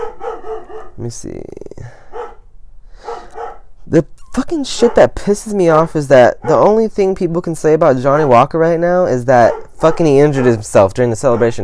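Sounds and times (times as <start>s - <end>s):
pet dog barking: 0.0s - 1.0s, 2.0s - 2.4s, 3.0s - 3.7s, 4.8s - 5.2s, 6.3s - 6.8s, 9.4s - 11.6s
speech: 1.0s - 2.0s, 3.9s - 11.6s.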